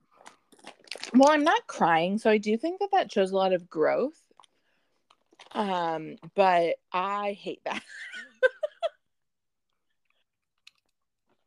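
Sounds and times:
crunchy rolled tortilla chips being bitten and chewed: 0.1s - 1.2s, 4.3s - 5.6s, 10.1s - 11.4s
speech: 1.1s - 4.2s, 5.6s - 8.1s.

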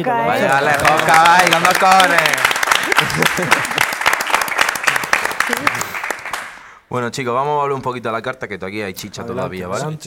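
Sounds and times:
speech: 0.0s - 3.8s, 5.5s - 5.9s, 6.9s - 10.0s
laughter: 0.3s - 1.5s, 2.8s - 4.0s
room full of people clapping: 0.3s - 6.8s.

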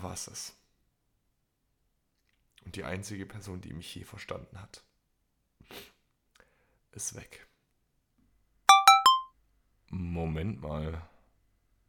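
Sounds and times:
speech: 0.0s - 0.6s, 2.7s - 4.9s, 5.6s - 5.9s, 6.9s - 7.5s, 9.9s - 11.1s
phone text message alert chime: 8.7s - 9.3s.

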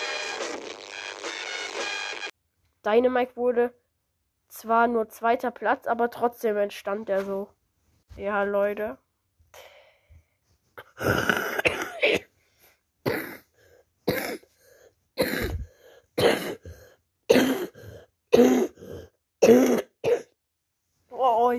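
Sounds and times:
speech: 2.8s - 3.8s, 4.5s - 9.6s
person coughing fit with harsh hacking coughs: 10.8s - 12.3s, 13.0s - 14.6s, 15.2s - 20.4s.

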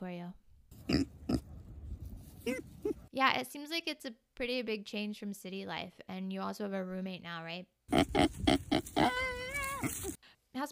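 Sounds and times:
pig grunting: 0.8s - 1.5s, 7.9s - 10.2s
speech: 2.4s - 9.2s, 10.6s - 10.7s
pig squealing: 7.9s - 10.2s.

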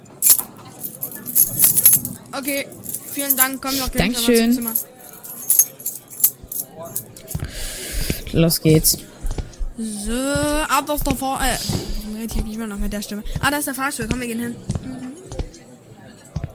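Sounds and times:
room keys jangling as they are handed over: 0.1s - 7.4s
rustling broadband shuffle: 0.2s - 15.1s
speech: 2.4s - 5.0s, 8.4s - 9.1s, 9.8s - 14.8s.

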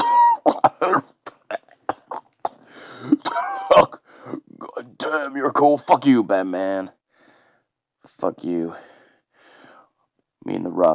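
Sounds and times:
voice imitating coughing on blood: 0.0s - 5.2s
speech: 0.6s - 1.0s, 5.1s - 7.0s, 8.2s - 8.9s, 10.4s - 10.9s.

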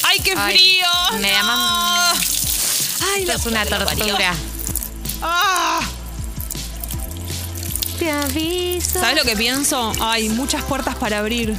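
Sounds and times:
water running from an opened faucet: 0.0s - 11.5s
speech: 0.2s - 1.9s, 3.2s - 4.5s, 5.2s - 5.9s, 8.0s - 11.5s.

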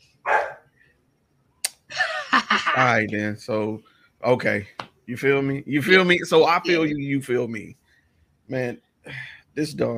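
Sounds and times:
dog barking in room: 0.2s - 0.7s
speech: 2.8s - 7.8s, 8.5s - 9.9s.

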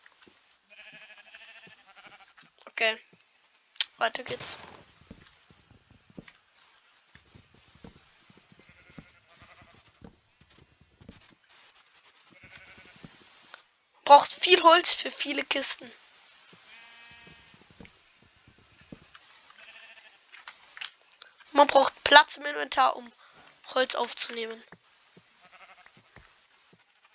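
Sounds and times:
footsteps in a video game: 0.0s - 13.6s, 14.6s - 21.0s, 23.0s - 27.0s
sheep bleating in a video game: 0.7s - 2.4s, 8.5s - 9.9s, 12.3s - 13.1s, 16.6s - 17.7s, 18.8s - 20.2s, 25.4s - 26.1s
speech: 2.8s - 3.1s, 4.0s - 4.9s, 14.1s - 16.0s, 21.6s - 24.8s
video game sounds: 4.2s - 4.8s.

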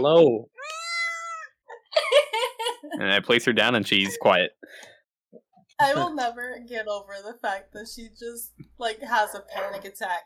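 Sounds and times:
speech: 0.0s - 0.5s, 2.9s - 10.2s
cat meowing loudly: 0.6s - 1.5s
laughter: 1.8s - 4.5s.

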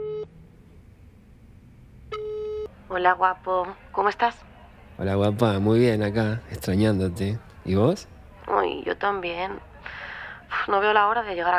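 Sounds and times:
telephone ringback tone while calling: 2.1s - 2.7s
speech: 2.9s - 10.0s, 10.6s - 11.5s.

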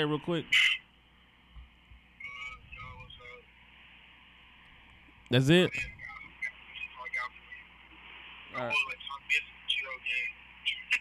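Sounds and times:
speech: 0.0s - 0.8s, 5.3s - 6.0s, 8.6s - 9.5s
muffled tinny voice over a phone line: 0.0s - 0.9s, 2.2s - 3.5s, 5.3s - 10.9s
faint hum: 0.0s - 10.9s.

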